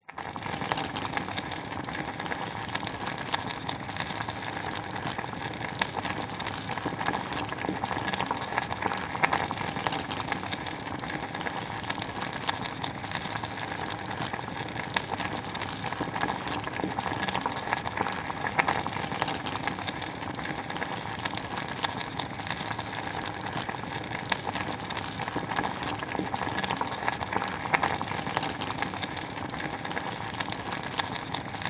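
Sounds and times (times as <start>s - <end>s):
soup boiling in a pan on a gas stove: 0.0s - 31.6s.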